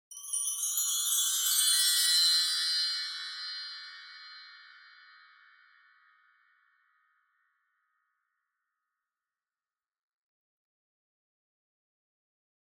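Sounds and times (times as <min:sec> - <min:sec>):
wind chimes with reverb: 0:00.1 - 0:06.3.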